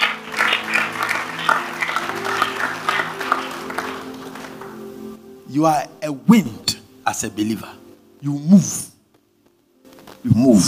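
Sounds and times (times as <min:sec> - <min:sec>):
church audience clapping to give God praise: 0:00.0 - 0:05.2
speech: 0:05.5 - 0:08.9, 0:10.2 - 0:10.6.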